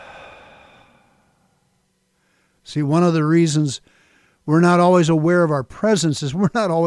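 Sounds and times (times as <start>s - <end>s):
slow exhaling breath during a guided breathing exercise: 0.0s - 1.4s
speech: 2.7s - 6.8s.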